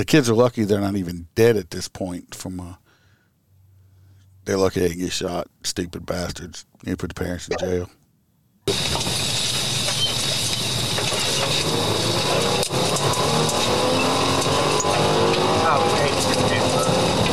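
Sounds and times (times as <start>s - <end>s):
speech: 0.0s - 2.8s, 4.5s - 8.0s
car engine roaring with a high whine: 8.7s - 17.3s.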